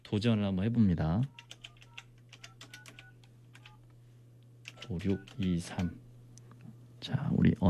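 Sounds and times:
speech: 0.1 - 1.5, 4.9 - 6.0, 7.0 - 7.6
phone keypad presses dialing a landline number: 1.3 - 3.8, 4.7 - 5.9.

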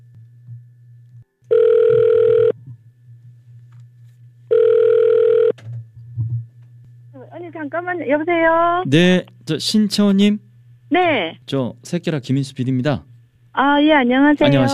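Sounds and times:
quiet line hum: 0.0 - 14.7
phone ringback tone: 1.5 - 2.6, 4.5 - 5.6
speech: 7.5 - 14.7.

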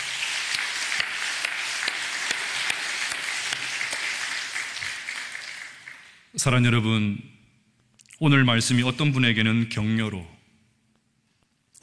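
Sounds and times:
large congregation applauding: 0.0 - 6.4
speech: 6.4 - 7.3, 8.2 - 10.4.

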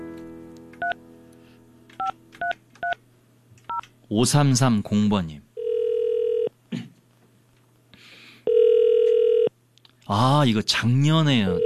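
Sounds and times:
speech: 4.1 - 5.5, 10.1 - 11.6
outgoing phone line ringback tone: 5.6 - 6.5, 8.5 - 9.5.

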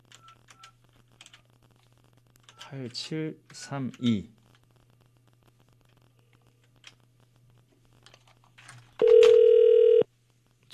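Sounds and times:
speech: 2.7 - 4.4
telephone ringback tone: 9.0 - 10.1.

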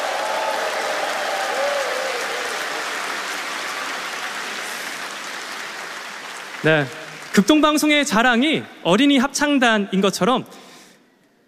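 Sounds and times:
large audience applause: 0.0 - 7.9
speech: 6.6 - 10.6.

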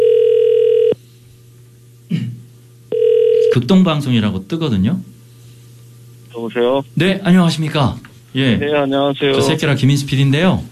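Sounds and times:
outgoing phone call ringback tone as a radio host calls a listener: 0.0 - 1.0, 2.9 - 3.6
speech: 3.6 - 5.1, 6.4 - 10.7.

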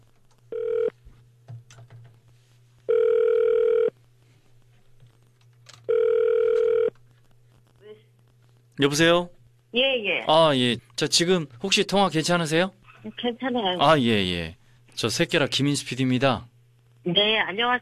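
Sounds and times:
low hum: 0.0 - 17.7
telephone ringback tone: 0.5 - 0.9, 2.9 - 3.9, 5.9 - 6.9
speech: 8.8 - 17.7.

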